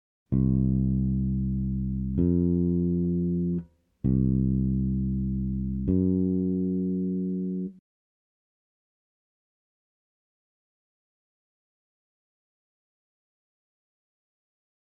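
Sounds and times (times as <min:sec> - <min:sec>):
bass playing a perfect and augmented fourth: 0:00.3 - 0:07.8.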